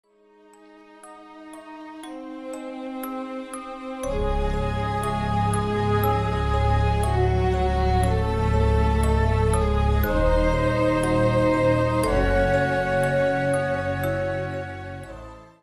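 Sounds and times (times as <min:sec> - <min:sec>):
melancholic sad creepy music box: 0:00.0 - 0:15.6.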